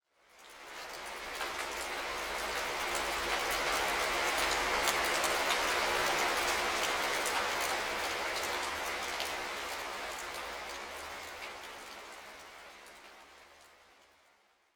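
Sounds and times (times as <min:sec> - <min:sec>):
rain ambience: 0:00.0 - 0:14.7.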